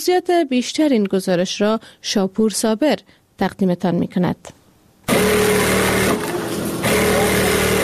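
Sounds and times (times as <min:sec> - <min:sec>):
speech: 0:00.0 - 0:05.5
electric sewing machines whirring: 0:05.1 - 0:07.8.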